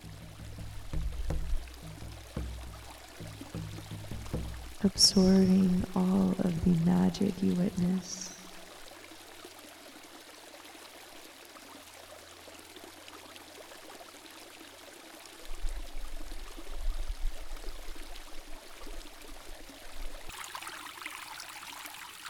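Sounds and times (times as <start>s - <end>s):
low rumbles: 0.0s - 8.6s
steady rain at a waterfall: 0.0s - 8.6s
water splashing at a waterfall: 0.0s - 17.0s, 17.6s - 22.2s
speech: 4.8s - 8.3s.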